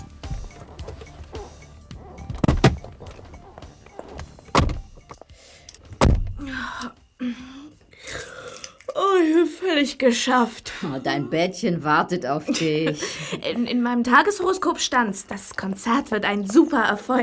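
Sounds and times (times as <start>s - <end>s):
car doors opening and closing: 0.0s - 5.2s, 5.8s - 6.4s
speech: 9.8s - 17.2s
laughter: 12.4s - 13.8s.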